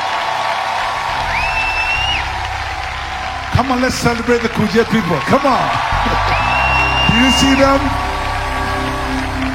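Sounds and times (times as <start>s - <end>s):
audience at a church service clapping and cheering: 0.0s - 9.5s
high whoop or whistle: 1.1s - 2.3s, 6.0s - 8.2s
speech: 3.6s - 6.4s, 7.1s - 8.0s.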